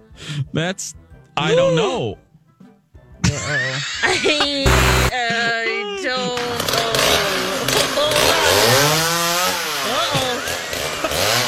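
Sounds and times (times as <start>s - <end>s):
speech: 0.2s - 2.2s, 3.3s - 7.0s
laughter: 3.2s - 6.9s, 9.8s - 11.4s
chainsaw-like cutting device running: 4.6s - 5.1s, 6.4s - 11.4s.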